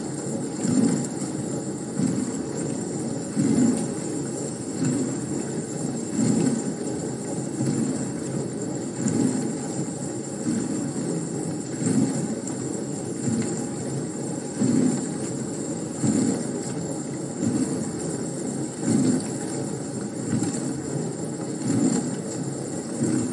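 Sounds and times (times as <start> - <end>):
dishwasher running with low churning hum: 0.0 - 23.3.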